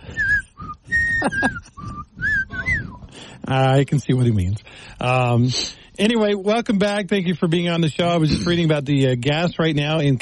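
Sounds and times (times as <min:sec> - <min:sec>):
person whistling a short wobbly tune: 0:00.0 - 0:03.2
speech: 0:01.2 - 0:01.8, 0:03.2 - 0:10.2.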